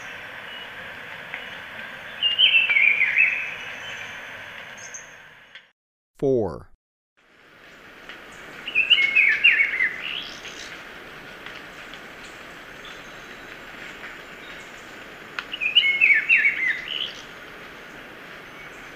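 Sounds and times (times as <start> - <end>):
Black-billed peppershrike song in Ecuador: 2.2 - 4.2, 8.7 - 10.4, 15.5 - 17.2
speech: 6.2 - 6.7.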